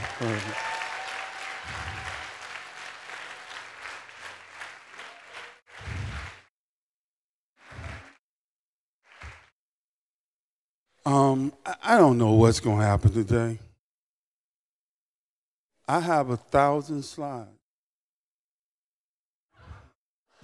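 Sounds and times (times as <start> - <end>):
crowd applauding: 0.0 - 6.5, 9.1 - 9.5
speech: 0.2 - 0.7, 11.3 - 13.7, 15.9 - 17.6.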